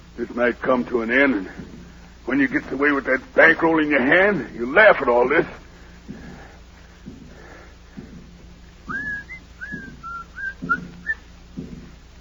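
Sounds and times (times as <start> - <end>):
steady low rhythmic thumping: 0.0 - 12.2
speech: 0.2 - 6.2
man whistling a short bright tune: 8.9 - 11.2.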